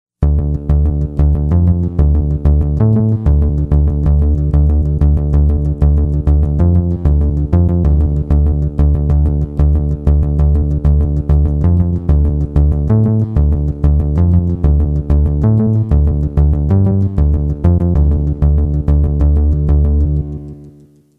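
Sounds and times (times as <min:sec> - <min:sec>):
synth bass: 0:00.2 - 0:20.9.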